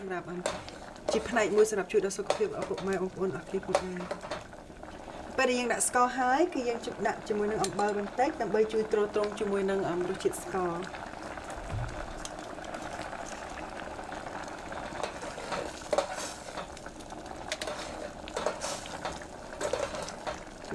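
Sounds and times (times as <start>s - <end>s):
speech: 0.1s - 4.3s, 5.4s - 11.0s
spoon stirring glutinous rice dessert in a pot: 0.3s - 4.6s, 7.4s - 8.1s, 14.8s - 20.7s.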